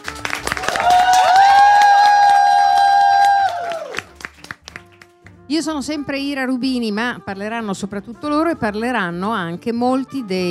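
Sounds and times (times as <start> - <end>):
crowd cheering: 0.0 - 4.2
crowd applauding: 0.0 - 5.3
sustained whistle-like whoop: 0.7 - 3.9
speech: 5.6 - 10.4.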